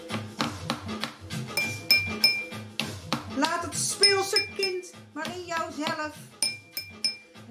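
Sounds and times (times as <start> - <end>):
tapping and drumming on a table: 0.1 - 7.2
bright clinks of glass: 1.6 - 2.6, 4.0 - 4.9, 6.4 - 7.4.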